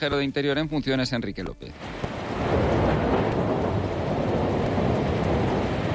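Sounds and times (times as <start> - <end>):
speech: 0.0 - 2.6
deep continuous thunder rumbling: 1.8 - 5.9
steady dense rain: 1.8 - 5.9.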